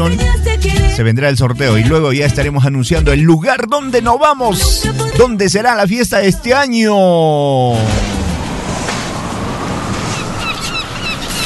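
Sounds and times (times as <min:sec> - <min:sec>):
speech: 0:01.0 - 0:08.2
breezy wind: 0:06.2 - 0:11.4
sea waves: 0:07.5 - 0:11.4
faint bird chirps: 0:10.1 - 0:11.4.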